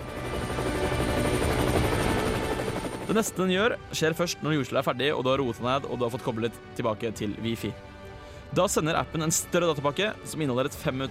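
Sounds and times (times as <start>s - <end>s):
helicopter rotor chopping: 0.0s - 3.9s
speech: 3.1s - 7.9s, 8.5s - 11.1s.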